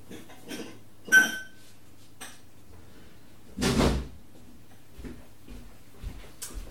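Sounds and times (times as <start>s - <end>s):
drinking glasses clinking: 0.5s - 1.6s.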